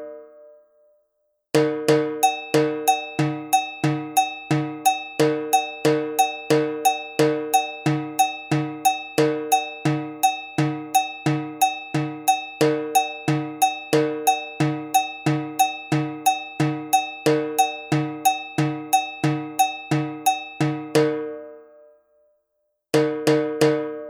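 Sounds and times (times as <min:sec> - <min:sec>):
agogo bell playing a samba reggae rhythm: 0:01.6 - 0:21.9, 0:23.0 - 0:24.0.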